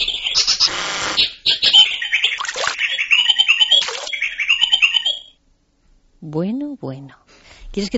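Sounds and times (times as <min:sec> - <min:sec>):
bird of paradise singing whistles and chatter, mimicking engine and dripping water: 0:00.0 - 0:05.4
speech: 0:06.3 - 0:07.9.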